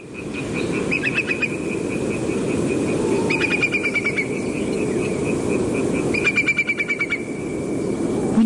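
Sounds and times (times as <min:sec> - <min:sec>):
whimbrel calling in flight at night: 0:00.0 - 0:08.0
steady low rumble of wind or surf: 0:00.0 - 0:08.4.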